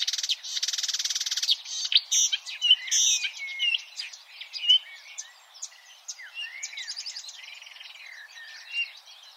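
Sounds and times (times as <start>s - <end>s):
Marsh warbler song: 0.0s - 9.3s.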